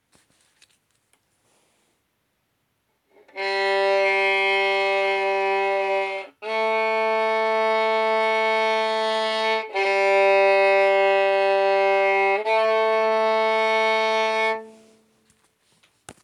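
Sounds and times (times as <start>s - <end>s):
G string: 3.2s - 15.2s.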